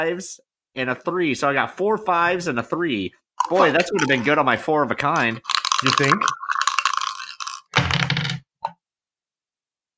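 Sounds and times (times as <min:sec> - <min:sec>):
speech: 0:00.0 - 0:06.5
dice rolled for Yahtzee clattering across a hard surface: 0:05.3 - 0:08.4.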